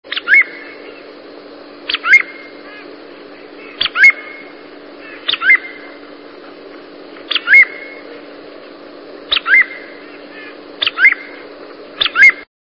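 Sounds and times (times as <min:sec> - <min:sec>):
Groove-billed Ani songs: 0:00.1 - 0:01.2, 0:01.8 - 0:06.1, 0:07.2 - 0:08.3, 0:09.3 - 0:12.5.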